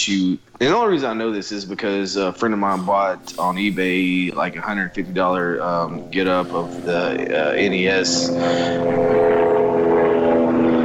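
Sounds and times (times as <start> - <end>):
speech: 0.0 - 9.5
helicopter flying overhead: 1.0 - 10.8.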